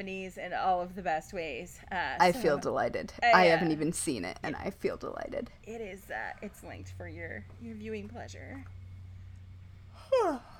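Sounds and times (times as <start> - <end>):
speech: 0.0 - 8.8, 10.1 - 10.5
person yawning: 10.0 - 10.5.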